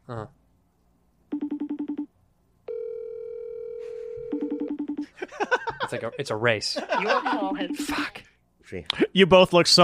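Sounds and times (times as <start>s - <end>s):
speech: 0.1s - 0.4s, 5.9s - 9.8s
outgoing phone call ringing tone: 1.3s - 2.1s, 2.7s - 5.1s
laughter: 5.1s - 7.9s.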